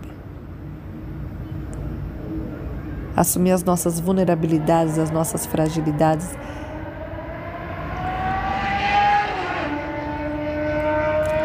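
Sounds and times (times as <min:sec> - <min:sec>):
steady lower hum: 0:00.0 - 0:11.4
speech: 0:03.2 - 0:06.6
motorcycle roaring down the street: 0:04.1 - 0:11.4.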